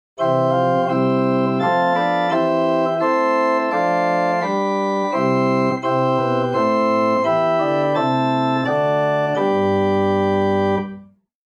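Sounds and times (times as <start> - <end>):
pipe organ with Quint 8 Spitz 4 Prinz 2 stops: 0.2 - 11.1.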